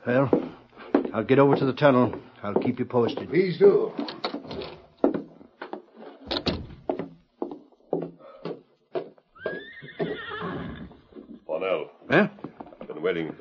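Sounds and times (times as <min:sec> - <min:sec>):
speech: 0:00.0 - 0:00.5, 0:01.2 - 0:04.3
hollow hoof clops and knocks from a saddled horse: 0:00.2 - 0:13.3
loud wavering whinny of a saddled horse: 0:09.3 - 0:11.3.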